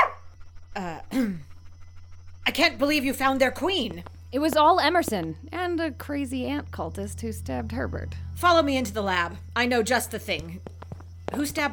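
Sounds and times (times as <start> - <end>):
dog giving short high-pitched barks: 0.0 - 0.3
faint steady low hum: 0.0 - 11.7
speech: 2.6 - 10.7, 11.3 - 11.7.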